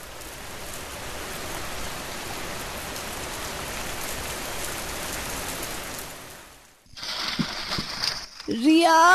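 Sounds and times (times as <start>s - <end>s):
heavy rain: 0.0s - 9.1s
speech: 8.5s - 9.1s.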